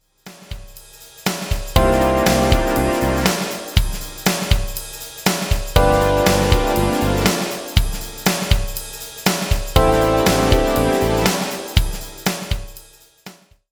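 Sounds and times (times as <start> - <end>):
groovy music: 1.8 - 12.8.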